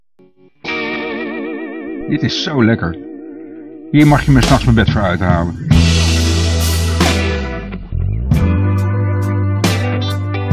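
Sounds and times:
soft plucked notes: 0.2s - 10.5s
sustained electric guitar chord with chorus-like shimmer: 0.2s - 10.5s
speech: 2.1s - 3.1s, 3.9s - 5.7s.

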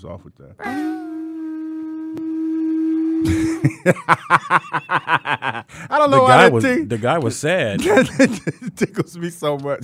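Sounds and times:
speech: 0.0s - 1.0s, 3.2s - 9.8s
weak, sad-sounding horn blast: 0.6s - 3.7s
laughter: 3.3s - 6.5s, 7.8s - 9.3s.

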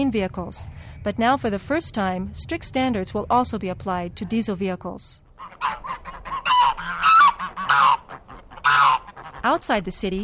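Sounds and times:
speech: 0.0s - 6.0s, 9.4s - 10.2s
flock of geese honking: 5.3s - 9.6s.

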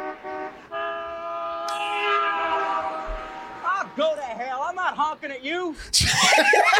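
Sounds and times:
car horn honking in one long steady blare: 0.0s - 4.7s
man talking animatedly: 3.6s - 6.6s
laughter: 6.0s - 6.7s.

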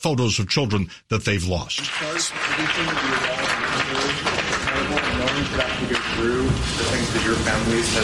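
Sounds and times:
speech: 0.0s - 8.0s
applause in a Senate Judiciary Committee hearing room: 1.8s - 8.0s.

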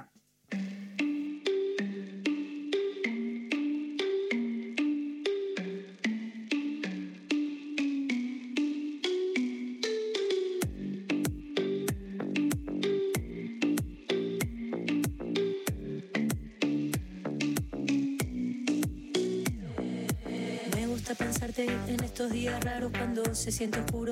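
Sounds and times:
plucked melodic line of a song intro on a radio show: 0.0s - 24.1s
punchy bass and beat: 10.6s - 24.1s
speech: 21.6s - 24.1s.

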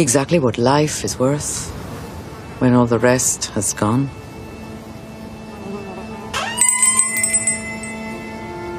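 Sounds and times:
speech: 0.0s - 1.8s, 2.6s - 4.2s
shop door bell ringing as someone enters: 6.4s - 8.6s.

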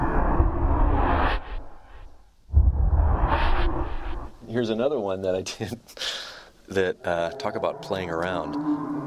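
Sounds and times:
dense airy transition whoosh: 0.0s - 4.4s
speech: 4.6s - 8.9s.

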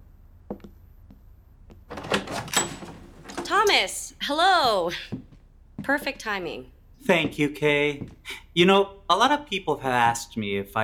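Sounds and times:
door latch or handle clicking: 1.9s - 3.5s
door scraping as it swings open: 1.9s - 3.8s
speech: 3.5s - 5.2s, 5.9s - 10.8s.

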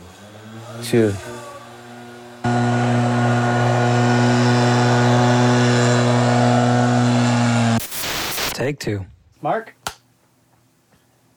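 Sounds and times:
drilling at the back of a house: 0.0s - 8.5s
speech: 0.8s - 1.3s, 8.8s - 9.8s.

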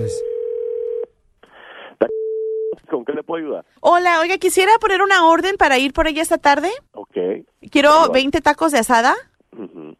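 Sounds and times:
speech: 0.0s - 0.3s, 2.9s - 9.7s
telephone line tone as a call is dialed: 0.0s - 1.1s.

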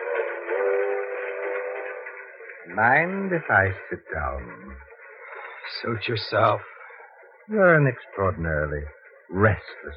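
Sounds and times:
train whistle blaring as it pulls into a station: 0.0s - 2.3s
speech: 2.7s - 4.9s, 5.7s - 6.7s, 7.5s - 9.9s.

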